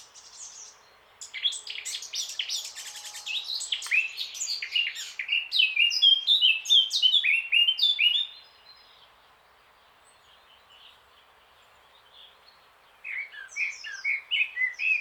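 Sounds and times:
Eurasian blackcap Sylvia atricapilla song: 1.3s - 8.4s, 13.0s - 14.9s.

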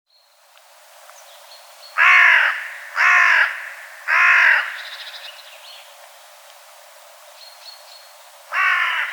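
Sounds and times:
Carrion crow cawing harshly: 2.0s - 5.2s, 8.5s - 9.1s.

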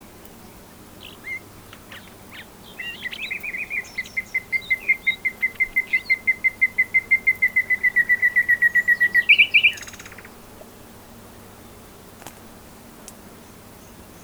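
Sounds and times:
common nightingale Luscinia megarhynchos song: 1.0s - 10.4s.

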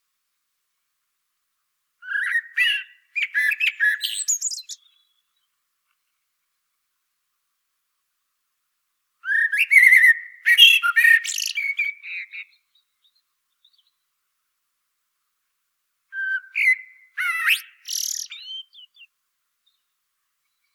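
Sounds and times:
common blackbird singing warbling and scratchy twittering phrases: 2.0s - 5.3s, 9.2s - 14.0s, 16.2s - 19.1s.

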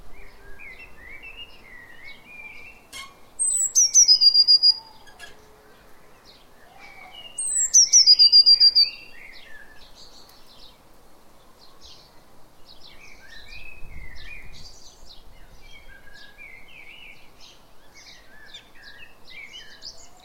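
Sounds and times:
busy chorus of higher and lower chirping birds: 0.2s - 20.2s
Eurasian blue tit Cyanistes caeruleus giving high thin phrases into a rapid trill: 1.2s - 4.9s, 7.2s - 9.1s.

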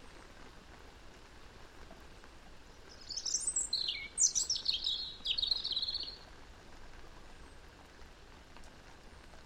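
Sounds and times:
faint background hiss: 0.0s - 9.4s
European robin singing: 2.9s - 6.2s.

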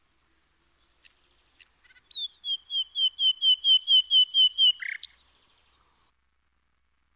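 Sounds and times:
common nightingale Luscinia megarhynchos singing: 0.7s - 6.1s.

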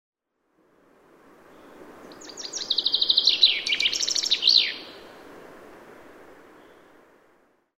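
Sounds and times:
faint background hiss: 0.3s - 7.7s
Common chaffinch Fringilla coelebs singing: 1.6s - 5.1s.

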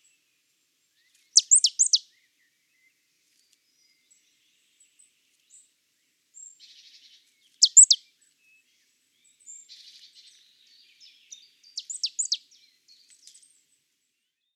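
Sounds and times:
marsh tit Poecile palustris call notes: 1.4s - 2.0s, 7.6s - 8.0s, 11.8s - 12.4s.

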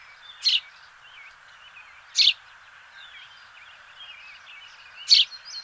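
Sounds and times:
house sparrow loud abrupt chirps: 0.4s - 0.7s, 2.1s - 2.4s, 5.0s - 5.4s.

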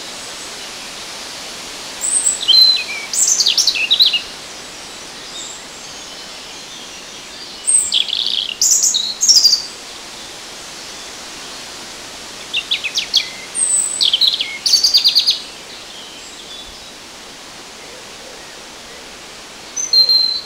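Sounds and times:
soft background hiss: 0.0s - 20.4s
European robin singing: 2.0s - 10.3s, 12.4s - 17.1s, 17.7s - 20.4s.

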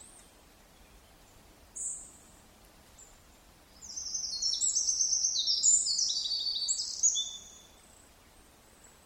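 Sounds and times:
Eurasian wren Troglodytes troglodytes singing chattering trills and warbled notes: 3.8s - 7.6s.

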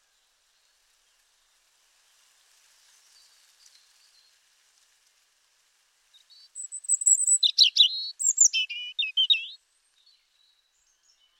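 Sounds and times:
European robin Erithacus rubecula song: 6.2s - 11.3s.

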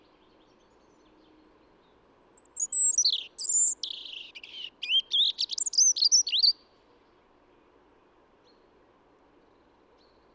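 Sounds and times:
European robin Erithacus rubecula singing: 2.4s - 6.6s.

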